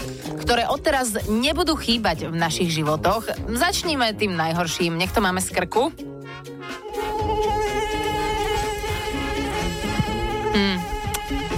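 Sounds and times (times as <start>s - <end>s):
speech: 0.5s - 6.1s, 10.6s - 10.9s
mosquito buzzing near the ear: 6.6s - 11.5s.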